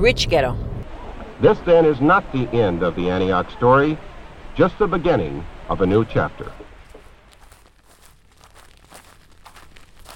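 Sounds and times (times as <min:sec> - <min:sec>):
speech: 0:00.0 - 0:00.7, 0:01.4 - 0:06.6
footsteps crunching through dry grass: 0:06.8 - 0:10.1.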